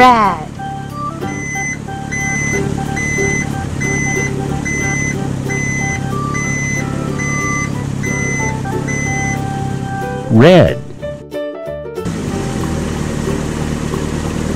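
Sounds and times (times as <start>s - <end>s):
garbage truck engine rumbling: 0.0s - 11.2s, 12.0s - 14.5s
green garbage truck reversing beeps: 0.5s - 10.4s
speech: 10.3s - 10.8s.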